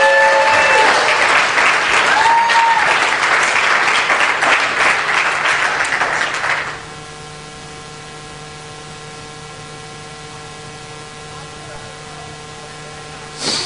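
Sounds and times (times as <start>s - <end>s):
large audience clapping loudly for a student: 0.0s - 6.8s.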